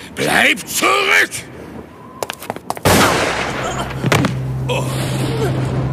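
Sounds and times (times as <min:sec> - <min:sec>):
speech: 0:00.2 - 0:01.6, 0:04.7 - 0:05.8
gunshot in a horror radio drama: 0:02.9 - 0:04.3.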